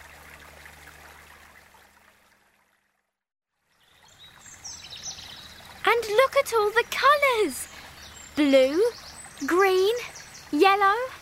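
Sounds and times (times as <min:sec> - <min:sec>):
small stream of melted ice water trickling and babbling: 0:00.0 - 0:11.2
speech: 0:05.9 - 0:07.7, 0:08.4 - 0:11.2.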